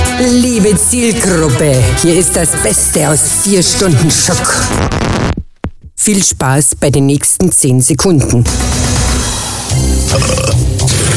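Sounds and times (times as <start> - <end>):
speech: 0.2 - 5.4, 6.0 - 9.0, 9.7 - 10.5
long loud guttural burp: 10.0 - 11.1.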